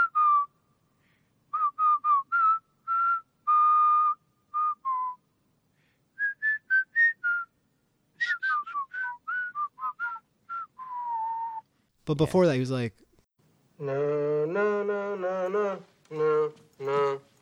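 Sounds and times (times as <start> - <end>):
person whistling a melody: 0.0 - 0.5, 1.5 - 5.2, 6.2 - 7.5, 8.2 - 11.7
speech: 12.1 - 13.0, 13.8 - 17.3.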